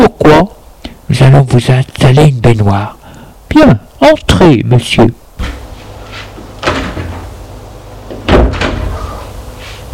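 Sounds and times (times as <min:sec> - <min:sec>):
speech: 0:01.3 - 0:05.6
door in a home being pushed shut: 0:08.2 - 0:09.0.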